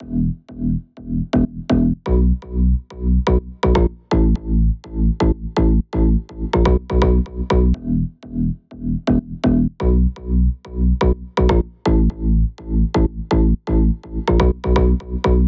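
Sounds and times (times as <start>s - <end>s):
bed bass in E minor: 0.0s - 15.4s.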